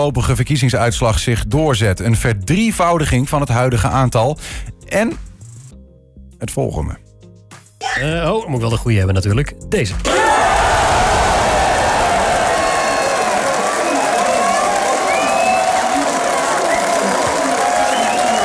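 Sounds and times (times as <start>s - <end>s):
speech: 0.0s - 5.3s, 6.4s - 7.0s, 8.0s - 10.4s
large crowd cheering and shouting at an election-night party: 10.0s - 18.4s.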